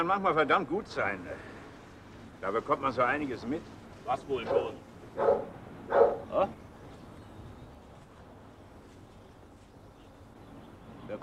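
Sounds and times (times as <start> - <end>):
speech: 0.0 - 1.5, 2.4 - 6.6
dog barking: 4.4 - 6.3.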